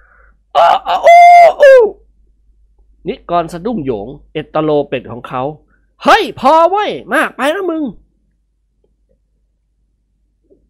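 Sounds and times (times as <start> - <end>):
person imitating a rooster crowing: 0.5 - 2.0
speech: 3.0 - 8.0.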